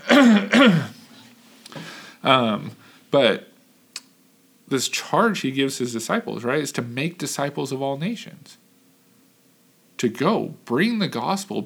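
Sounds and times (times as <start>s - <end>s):
person clearing throat: 0.0s - 1.0s
speech: 0.2s - 0.9s, 2.3s - 3.5s, 4.7s - 8.6s, 10.0s - 11.6s.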